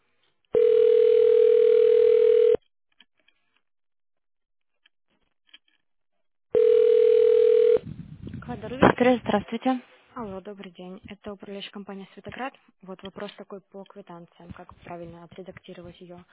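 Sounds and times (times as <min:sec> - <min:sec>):
telephone ringback tone while call is transferred: 0:00.6 - 0:02.6, 0:06.6 - 0:07.8
speech: 0:09.1 - 0:16.3.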